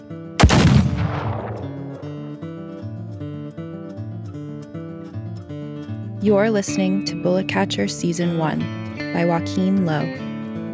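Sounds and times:
gunshot from a gun fired point-blank into a man's chest: 0:00.4 - 0:02.2
speech: 0:06.2 - 0:10.3.

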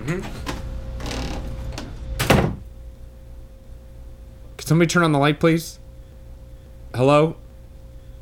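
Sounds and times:
speech: 0:00.0 - 0:00.4, 0:04.7 - 0:05.8, 0:07.0 - 0:07.4
heavy door slamming shut: 0:02.2 - 0:02.6.

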